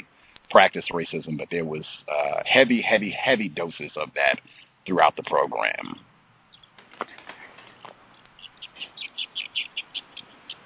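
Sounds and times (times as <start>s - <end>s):
speech: 0.5s - 6.1s
small birds chirping: 5.9s - 10.6s.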